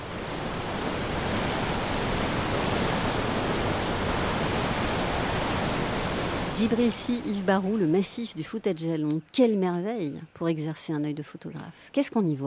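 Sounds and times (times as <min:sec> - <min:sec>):
waterfalls roaring down cliffs in the Fouta Djallon massif forest: 0:00.0 - 0:07.8
speech: 0:06.6 - 0:12.4.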